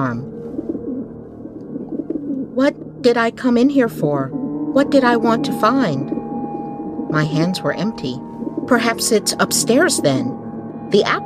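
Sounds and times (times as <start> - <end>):
speech: 0.0 - 0.4, 2.6 - 6.1, 7.1 - 11.2
low hum: 0.0 - 11.2
wood pigeons cooing: 0.6 - 2.9.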